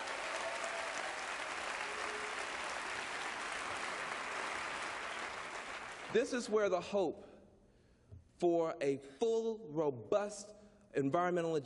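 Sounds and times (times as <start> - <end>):
audience applause: 0.0 - 6.2
speech: 6.1 - 7.3, 8.4 - 11.6.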